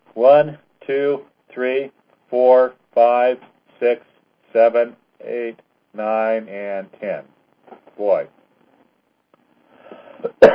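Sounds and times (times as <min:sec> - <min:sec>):
speech: 0:00.2 - 0:07.3, 0:08.0 - 0:08.4
faint breathy throat sounds: 0:09.7 - 0:10.5
single sharp cough: 0:10.2 - 0:10.5.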